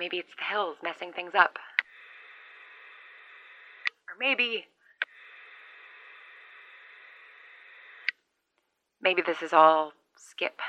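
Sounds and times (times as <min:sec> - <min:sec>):
speech: 0:00.0 - 0:01.7, 0:04.1 - 0:04.7, 0:09.0 - 0:10.6
radio static hissing: 0:01.2 - 0:08.2.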